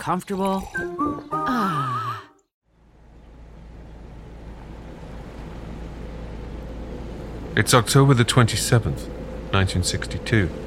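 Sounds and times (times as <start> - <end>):
speech: 0.0 - 2.0, 7.6 - 10.6
naval destroyer engine rumbling through the sea: 2.8 - 10.6.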